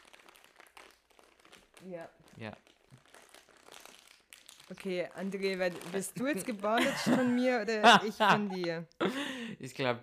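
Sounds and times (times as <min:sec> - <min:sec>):
plastic packaging crinkling as it is torn open: 0:00.0 - 0:07.4
speech: 0:01.8 - 0:02.7, 0:04.7 - 0:10.0
laughter: 0:06.8 - 0:08.7.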